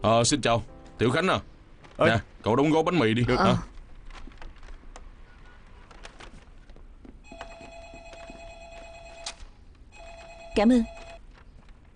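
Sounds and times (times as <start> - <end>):
speech: 0.0 - 3.7, 10.6 - 11.0
telephone ringing with a steady electronic tone: 7.2 - 11.2.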